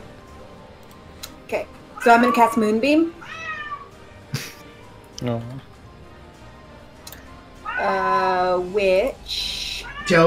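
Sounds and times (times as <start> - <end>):
speech: 1.5 - 3.4, 5.2 - 5.6, 7.8 - 9.5, 10.1 - 10.2
female cat meowing grumpily: 2.0 - 4.0, 7.6 - 8.3, 9.6 - 10.2.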